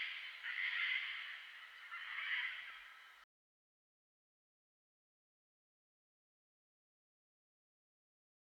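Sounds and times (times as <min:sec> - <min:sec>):
Gang-gang cockatoo making a drawn-out raspy grating call: 0:00.0 - 0:03.2.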